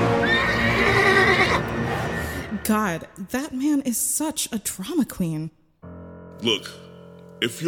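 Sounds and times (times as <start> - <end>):
horse neighing: 0.2 - 1.6
speech: 2.7 - 5.6, 6.4 - 6.9, 7.4 - 7.6.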